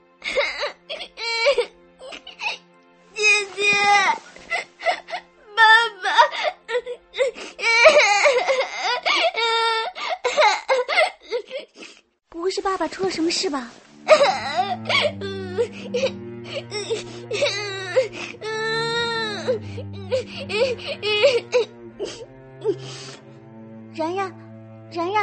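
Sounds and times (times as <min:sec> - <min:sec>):
child crying and sobbing: 0:00.2 - 0:02.6, 0:03.2 - 0:11.8, 0:14.0 - 0:22.8
speech: 0:12.8 - 0:13.9.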